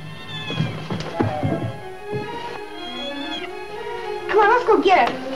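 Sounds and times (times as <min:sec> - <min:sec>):
cat meowing by the garage: 0:00.0 - 0:01.7, 0:02.8 - 0:03.5
speech: 0:04.4 - 0:05.2.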